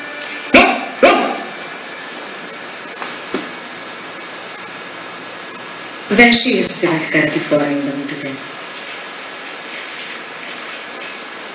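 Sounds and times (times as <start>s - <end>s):
steady low hum: 0.0s - 11.5s
dog barking: 0.5s - 1.5s
speech: 6.2s - 8.5s.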